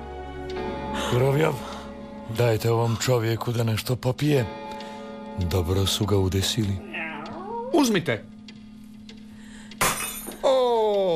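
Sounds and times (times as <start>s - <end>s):
speech: 0.6s - 4.6s, 5.4s - 6.9s, 7.7s - 8.3s
drinking glass shattering: 9.8s - 10.4s.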